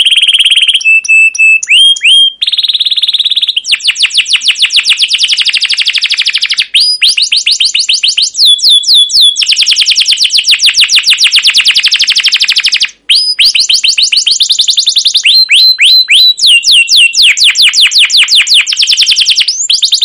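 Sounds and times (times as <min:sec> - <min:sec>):
caged canary song used as a lure to train young canaries: 0:00.0 - 0:20.0.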